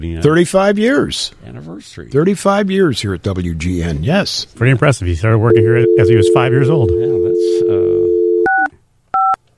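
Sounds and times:
speech: 0:00.0 - 0:07.2
telephone keypad dialing tones: 0:05.5 - 0:09.4.

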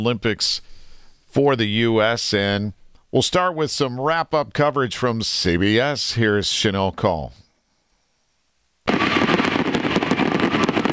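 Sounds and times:
speech: 0:00.0 - 0:07.4
fireworks barrage at the Paris 2024 Olympics closing ceremony: 0:08.9 - 0:10.9.

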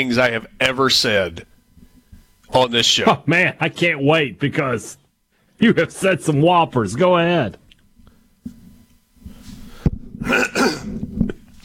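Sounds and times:
speech: 0:00.0 - 0:01.5, 0:02.5 - 0:05.0, 0:05.6 - 0:07.6
man clearing his throat: 0:10.2 - 0:11.4.

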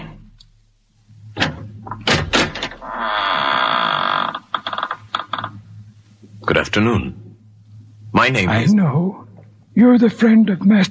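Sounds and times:
massive wooden door creaking and groaning as it swings open: 0:01.3 - 0:05.8
speech: 0:06.6 - 0:07.2, 0:08.1 - 0:10.8.

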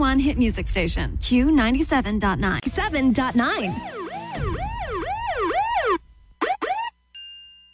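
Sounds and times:
speech: 0:00.1 - 0:04.0
short sweeping siren chirps: 0:02.8 - 0:07.1
emergency vehicle siren wailing: 0:03.6 - 0:07.0
brief electronic tone: 0:03.6 - 0:07.1.

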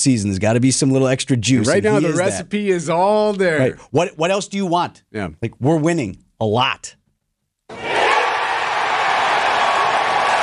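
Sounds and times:
speech: 0:00.0 - 0:07.0
large outdoor golf crowd cheering after winning putt: 0:07.7 - 0:10.4.

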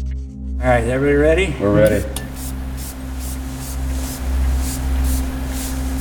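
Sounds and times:
speech: 0:00.6 - 0:02.2
steady low electrical hum: 0:00.6 - 0:05.9
pump spray bottle spraying luminol reagent: 0:01.8 - 0:05.9.

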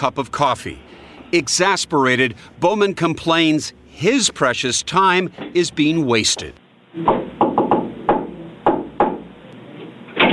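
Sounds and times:
speech: 0:00.0 - 0:07.2
knocking on a door: 0:07.0 - 0:09.3.

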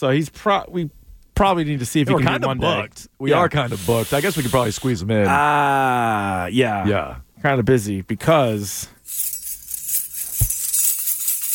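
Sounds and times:
speech: 0:00.0 - 0:09.3
bunch of keys jingling: 0:09.0 - 0:11.5.

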